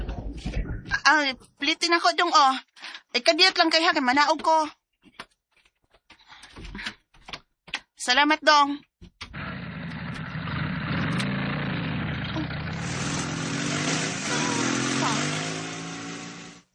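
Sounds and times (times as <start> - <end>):
speech: 0.4 - 4.8, 8.0 - 9.1
motorcycle engine revving as it passes by: 9.3 - 16.7.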